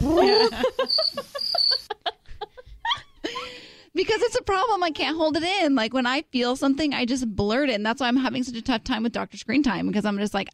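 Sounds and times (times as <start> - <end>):
rhythmic voice-like chuckling bursts: 0.0 - 3.4
crickets chirping: 0.2 - 1.9
speech: 4.8 - 10.5.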